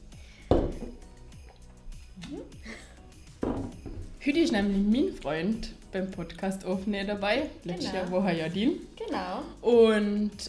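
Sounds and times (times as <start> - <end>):
glasses clinking in a toast: 0.4 - 2.5, 3.2 - 5.0
speech: 4.2 - 10.4.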